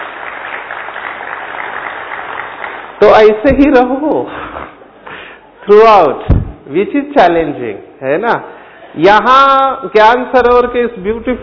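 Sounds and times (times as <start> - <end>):
audience clapping in a hall: 0.0 - 3.2
speech: 3.0 - 4.5, 5.6 - 11.4.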